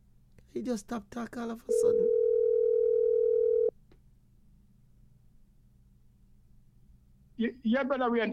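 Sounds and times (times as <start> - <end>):
low noise: 0.0 - 8.3
speech: 0.5 - 2.2, 7.4 - 8.3
steady telephone dial tone: 1.7 - 3.7.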